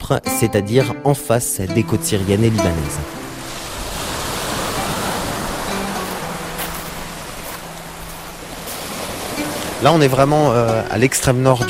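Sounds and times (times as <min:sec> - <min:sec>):
speech: 0:00.1 - 0:03.3, 0:09.8 - 0:11.6
waves breaking on a rubbish-covered beach in the far north of Lebanon: 0:02.0 - 0:11.6.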